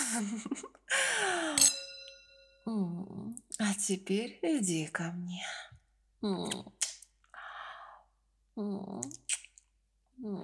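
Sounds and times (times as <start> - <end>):
speech: 0.1 - 1.8, 2.6 - 5.6, 6.2 - 6.8, 8.6 - 9.3, 10.2 - 10.4
two glasses of aperitif clinking in a toast: 1.6 - 2.7.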